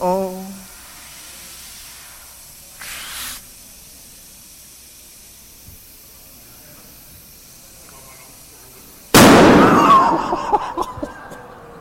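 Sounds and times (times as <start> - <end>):
very large balloon bursting: 9.1 - 10.3
laughter: 9.7 - 11.6.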